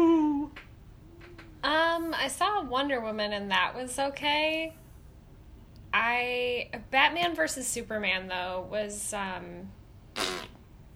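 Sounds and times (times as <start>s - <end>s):
speech: 2.1s - 4.8s, 6.0s - 10.3s
voice imitating a fart: 10.2s - 10.6s.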